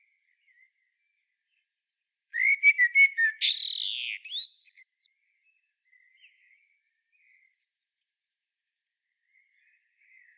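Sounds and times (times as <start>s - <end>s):
common blackbird Turdus merula singing: 2.4s - 5.1s.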